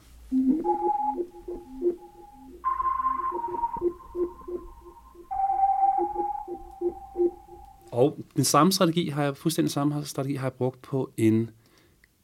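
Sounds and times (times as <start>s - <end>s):
short melodic figure played on a sampled keyboard: 0.0s - 8.1s
speech: 8.4s - 11.6s.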